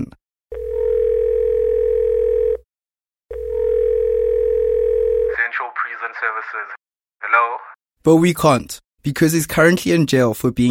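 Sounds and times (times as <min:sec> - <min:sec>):
telephone tone of outgoing call: 0:00.5 - 0:02.6, 0:03.3 - 0:05.4
speech: 0:06.5 - 0:10.6.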